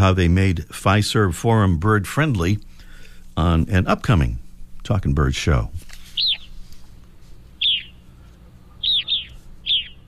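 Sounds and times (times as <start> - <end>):
speech: 0.0 - 2.7, 3.4 - 5.8
Evening Grosbeak calls: 6.1 - 6.6, 7.6 - 10.0.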